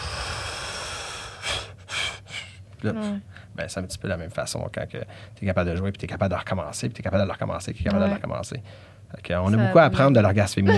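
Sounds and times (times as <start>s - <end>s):
person forcefully blowing out breath in tantric breathing: 0.0s - 2.6s
speech: 2.8s - 10.7s.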